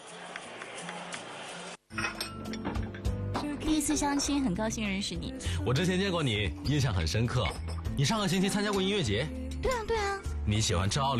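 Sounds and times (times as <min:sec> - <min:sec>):
crowd noise at a busy gathering: 0:00.0 - 0:01.8
glasses clinking in a toast: 0:01.9 - 0:04.4, 0:07.0 - 0:09.1
speech: 0:03.8 - 0:11.1.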